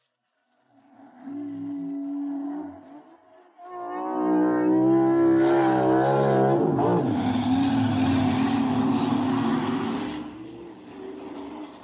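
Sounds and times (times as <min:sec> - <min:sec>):
monster truck engine revving: 0:04.1 - 0:11.8.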